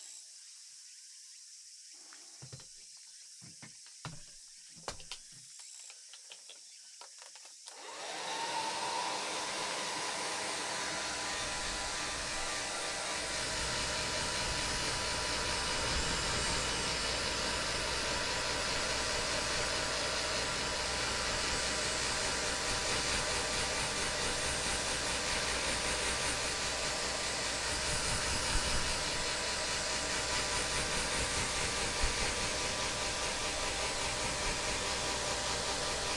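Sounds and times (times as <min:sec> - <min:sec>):
hair dryer blowing while drying hair: 0:07.7 - 0:36.1.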